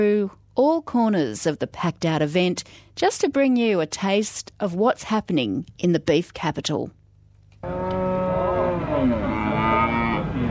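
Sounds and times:
speech: 0.0 - 7.0, 7.6 - 8.0
cattle mooing at a beef industry show in Queensland: 7.6 - 10.5.

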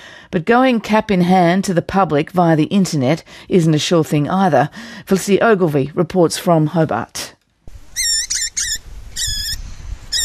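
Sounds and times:
speech: 0.3 - 7.3
baby swift parrots begging while fed in nest boxes in gum trees: 7.9 - 10.2.

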